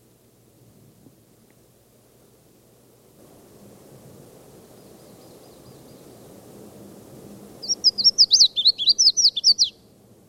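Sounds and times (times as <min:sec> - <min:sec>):
soft low background noise: 0:00.0 - 0:10.2
Red-faced Warbler song: 0:04.6 - 0:06.4, 0:07.6 - 0:09.9.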